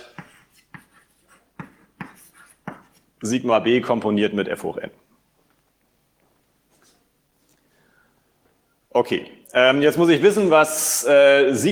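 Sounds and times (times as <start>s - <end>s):
scratchy strokes of writing out an equation during a math lecture: 0.0s - 3.2s
speech: 3.2s - 5.0s, 9.0s - 11.7s.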